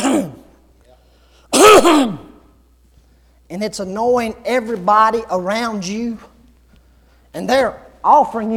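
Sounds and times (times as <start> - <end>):
loud rasping throat clearing: 0.0 - 0.5, 1.5 - 2.5
speech: 1.8 - 2.2, 3.5 - 6.3, 7.3 - 8.5.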